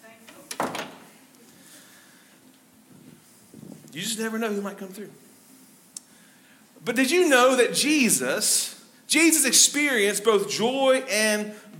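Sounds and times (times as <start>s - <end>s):
door being closed: 0.3s - 1.2s
speech: 4.0s - 5.3s, 6.9s - 11.7s.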